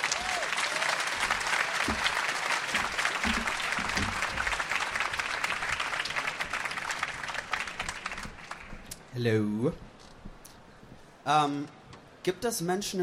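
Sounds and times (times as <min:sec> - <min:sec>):
audience applause: 0:00.0 - 0:09.1
speech: 0:09.2 - 0:09.9, 0:11.2 - 0:13.0.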